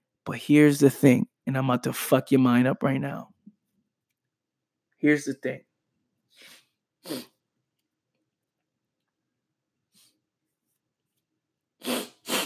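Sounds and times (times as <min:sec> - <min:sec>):
speech: 0:00.3 - 0:03.3, 0:05.0 - 0:05.7, 0:06.4 - 0:07.3, 0:11.8 - 0:12.1
person blowing their nose: 0:06.3 - 0:07.4, 0:11.8 - 0:12.4.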